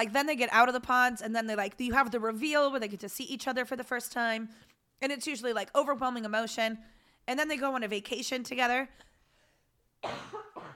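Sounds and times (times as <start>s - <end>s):
speech: 0.0s - 9.1s, 10.0s - 10.7s
person coughing harshly: 10.0s - 10.7s.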